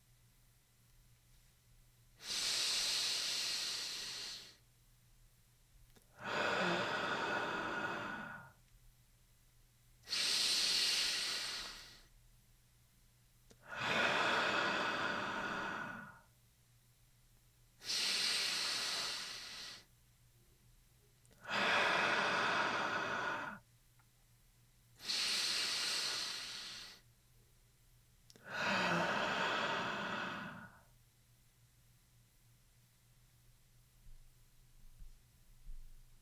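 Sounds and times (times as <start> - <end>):
slow deep breathing in and out during a guided morning stretch: 2.2 - 4.6, 6.1 - 8.6, 10.1 - 12.2, 13.6 - 16.3, 17.8 - 19.9, 21.4 - 23.6, 25.0 - 27.0, 28.3 - 30.9.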